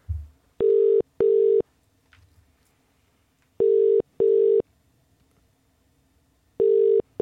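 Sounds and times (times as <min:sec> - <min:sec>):
telephone ringing tone of a call placed to a bakery: 0:00.6 - 0:01.6, 0:03.6 - 0:04.6, 0:06.6 - 0:07.1.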